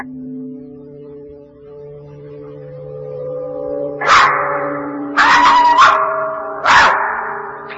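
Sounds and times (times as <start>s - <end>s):
dog barking: 4.0s - 4.6s, 5.2s - 7.4s.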